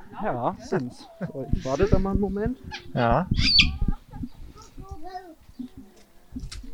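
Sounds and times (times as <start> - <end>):
speech: 0.2 - 3.7
parrots squawking in a zoo enclosure: 2.6 - 3.9.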